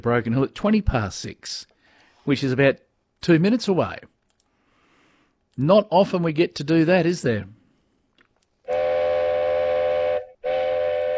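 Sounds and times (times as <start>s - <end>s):
speech: 0.0s - 1.7s, 2.3s - 4.1s, 5.6s - 7.6s
Indian Pacific passenger train horn blasts arriving into Broken Hill: 8.7s - 11.1s.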